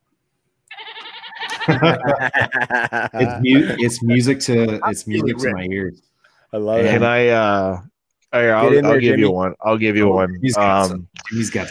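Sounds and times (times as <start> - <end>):
person imitating a goat with a nasal quavering bleat: 0.7 - 1.8, 3.3 - 4.2
laughter: 1.5 - 5.4
speech: 1.7 - 11.6.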